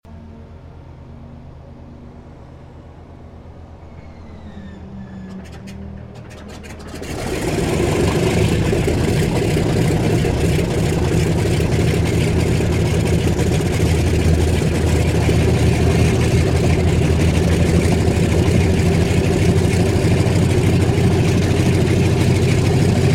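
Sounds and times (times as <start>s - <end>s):
Douglas DC3 aircraft engine starting up and idling: 0.1s - 23.1s.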